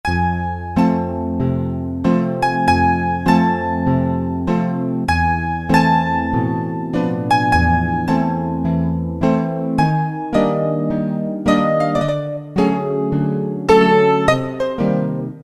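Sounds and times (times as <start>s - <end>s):
Roland PN-D50-04 digital piano: 0.0s - 15.4s.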